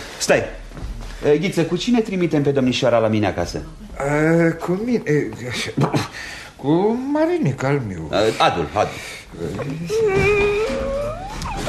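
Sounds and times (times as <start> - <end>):
speech: 0.2 - 0.6, 1.2 - 11.0
young woman crying and whimpering: 9.8 - 11.6.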